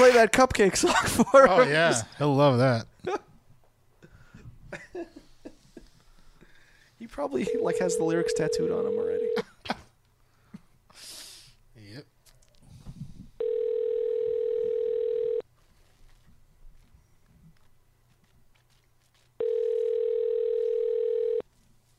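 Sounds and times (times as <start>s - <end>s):
speech: 0.1s - 3.3s, 4.7s - 5.1s, 7.0s - 9.8s
faint breathing: 4.0s - 4.6s, 5.2s - 7.0s, 10.2s - 11.6s
ringback tones of an unanswered outgoing phone call: 7.4s - 9.4s, 13.4s - 15.4s, 19.4s - 21.4s.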